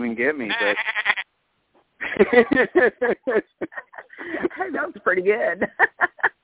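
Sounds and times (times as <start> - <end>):
speech: 0.1 - 1.1, 2.1 - 6.4
person imitating a goat's bleat: 0.5 - 1.2
laughter: 2.0 - 6.4.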